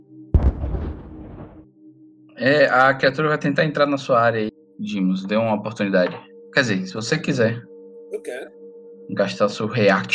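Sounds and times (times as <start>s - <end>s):
flashbang grenade explosion: 0.4s - 1.6s
speech: 2.4s - 10.1s.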